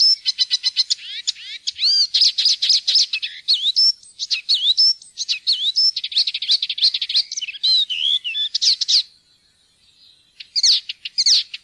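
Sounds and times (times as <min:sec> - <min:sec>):
Icterine warbler song: 0:00.0 - 0:11.6.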